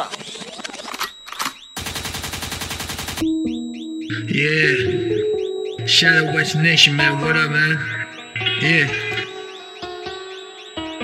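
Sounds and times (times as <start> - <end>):
sweeping electronic chirps: 0.0 - 11.0
rapid loud gunfire sound effects: 1.8 - 3.2
speech: 3.2 - 5.3, 5.9 - 8.0, 8.6 - 9.1
sustained tone: 3.2 - 11.0.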